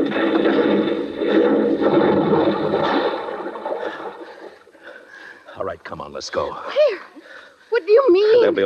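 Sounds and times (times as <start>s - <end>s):
water gurgling and sloshing as a car sinks in an irrigation ditch: 0.0s - 6.6s
speech: 6.2s - 7.1s, 7.9s - 8.6s.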